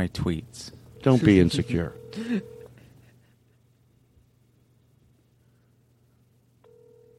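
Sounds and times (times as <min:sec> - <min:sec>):
speech: 0:00.0 - 0:02.6
outgoing phone call ringback tone: 0:01.0 - 0:02.7, 0:06.6 - 0:07.1.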